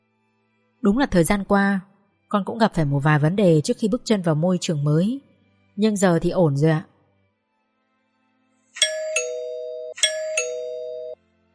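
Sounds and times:
speech: 0:00.8 - 0:06.9
gate bell ding-dong chime: 0:08.8 - 0:11.2.

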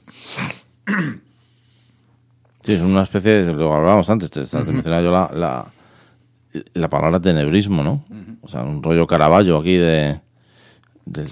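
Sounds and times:
person clearing throat after choking slightly: 0:00.4 - 0:01.3, 0:08.1 - 0:08.5
person coughing after choking slightly: 0:00.4 - 0:01.3
speech: 0:00.9 - 0:01.3, 0:02.6 - 0:05.8, 0:06.5 - 0:10.2, 0:11.1 - 0:11.3.

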